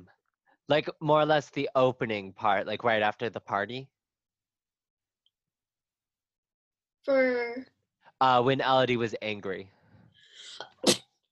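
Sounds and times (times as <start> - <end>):
speech: 0.7 - 4.0, 7.1 - 9.8
person sneezing: 10.4 - 11.1.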